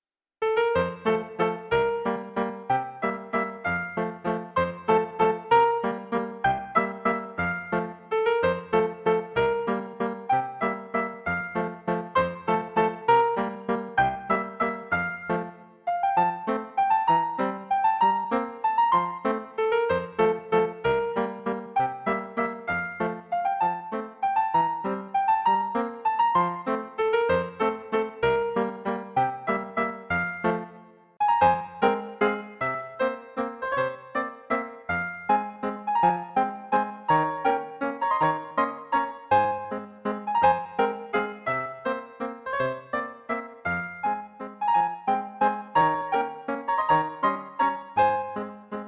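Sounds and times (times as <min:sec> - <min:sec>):
piano piece: 0:00.4 - 0:48.8.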